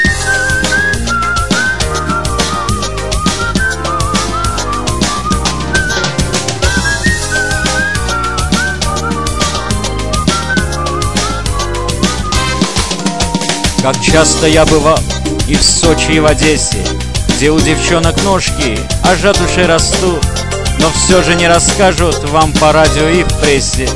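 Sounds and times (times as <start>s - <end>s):
cheerful bouncy whistled melody sliding and trilling: 0.0s - 13.1s
loud full band accompaniment with steady drums: 0.0s - 23.9s
speech: 13.8s - 23.9s.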